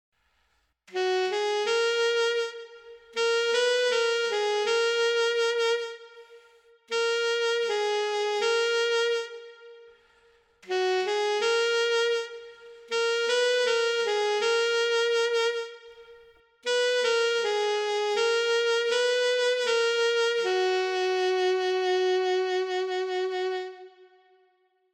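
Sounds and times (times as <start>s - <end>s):
brass alto sax: 0.3s - 24.7s.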